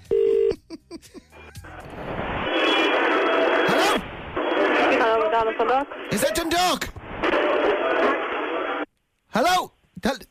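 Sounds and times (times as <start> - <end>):
phone ringback tone over a phone line on an outgoing call: 0.0 - 0.5
phone line hiss and static: 1.6 - 10.3
speech: 5.4 - 7.4.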